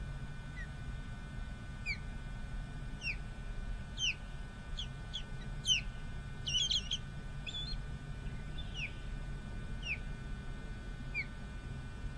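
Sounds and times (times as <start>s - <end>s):
faint constant tone: 0.0s - 12.1s
bird chirping in Bexar County Texas: 0.5s - 0.7s, 1.8s - 2.0s, 3.0s - 3.2s, 4.0s - 9.2s, 9.8s - 10.1s, 11.1s - 11.4s.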